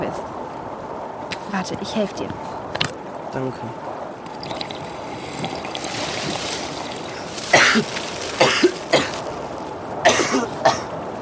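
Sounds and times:
speech: 1.5s - 2.6s, 3.3s - 4.6s, 7.7s - 8.0s
constant watery hiss: 4.3s - 9.3s
raspy coughs: 7.5s - 9.2s, 10.0s - 10.9s.

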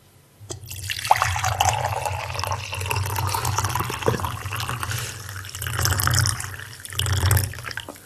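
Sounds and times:
tea pouring into a cup: 0.5s - 8.0s.

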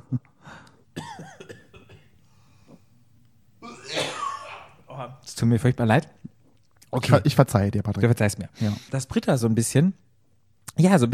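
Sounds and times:
person coughing and sputtering after inhaling a hair from the microphone: 1.0s - 2.1s, 3.6s - 5.1s
speech: 5.4s - 6.2s, 6.9s - 10.0s, 10.8s - 11.1s.

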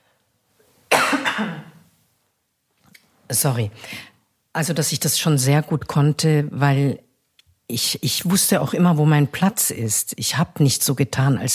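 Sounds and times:
harsh cough: 0.9s - 1.8s
speech: 1.4s - 1.7s, 3.3s - 7.1s, 7.7s - 11.5s.

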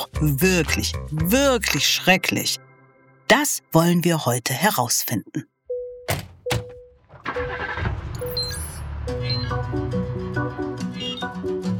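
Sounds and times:
speech: 0.2s - 2.7s, 3.3s - 5.5s
taxi engine starting and driving off: 7.0s - 10.9s.

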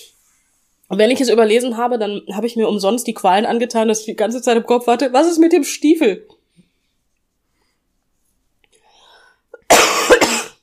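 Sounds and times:
speech: 0.9s - 6.4s
harsh cough: 9.6s - 10.6s.

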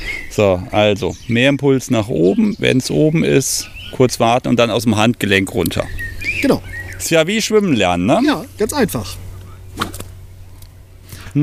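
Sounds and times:
low hum: 0.0s - 11.4s
speech: 0.4s - 9.2s
whip swishing and cracking: 9.8s - 10.1s.

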